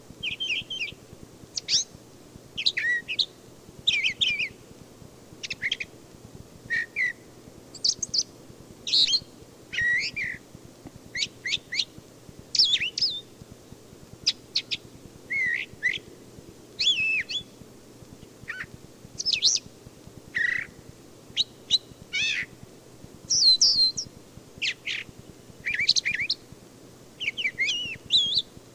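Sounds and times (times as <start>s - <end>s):
Brown thrasher continuous song of slurred whistles and harsh chips: 0.2s - 1.0s, 1.6s - 1.9s, 2.6s - 4.6s, 5.4s - 5.9s, 6.7s - 10.4s, 11.1s - 11.9s, 12.5s - 13.3s, 14.2s - 16.1s, 16.8s - 17.6s, 18.5s - 19.7s, 20.4s - 22.5s, 23.3s - 26.4s, 27.2s - 28.5s.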